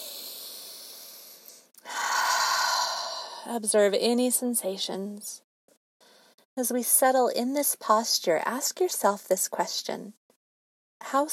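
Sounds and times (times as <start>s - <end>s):
deep breath in and out during a guided meditation on a mat: 0.0s - 3.5s, 6.0s - 6.5s
speech: 3.4s - 5.4s, 6.6s - 10.2s, 11.1s - 11.3s.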